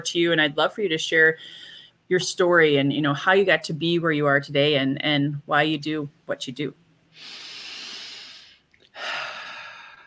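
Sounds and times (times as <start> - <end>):
speech: 0.0 - 7.4
deep deliberate breath inhale and exhale: 7.1 - 10.0.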